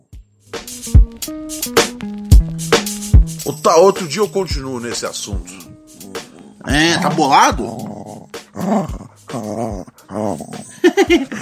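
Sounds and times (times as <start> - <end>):
speech: 0.8 - 5.7, 6.6 - 7.9, 8.6 - 11.3
dog whimpering, upset at not being allowed outside: 5.7 - 11.0
laughter: 10.7 - 11.3.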